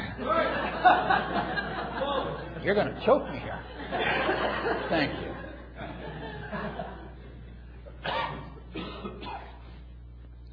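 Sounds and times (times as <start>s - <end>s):
laughter: 0.0s - 8.6s
low steady hum: 0.0s - 10.5s
speech: 2.6s - 5.5s
person sneezing: 8.0s - 9.7s.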